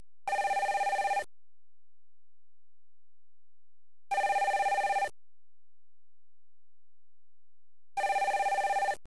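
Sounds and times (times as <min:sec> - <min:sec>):
telephone ringing: 0:00.3 - 0:01.3, 0:04.1 - 0:05.1, 0:08.0 - 0:09.0.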